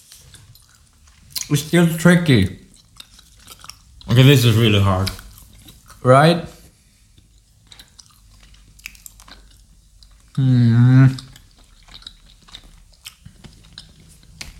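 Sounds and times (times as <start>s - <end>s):
sticky chewing of toffee candy: 0.0s - 6.0s, 7.1s - 14.5s
speech: 1.5s - 2.6s, 4.1s - 5.2s, 6.0s - 6.6s, 10.4s - 11.3s
person eating humming mmm of enjoyment: 10.4s - 11.4s.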